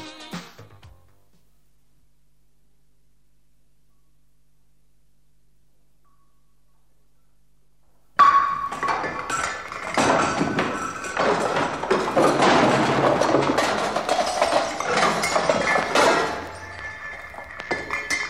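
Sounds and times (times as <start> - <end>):
glass bottle of rum breaking and spilling on floor: 8.2 - 18.2
glass shards clinking and tinkling on floor: 8.9 - 18.2.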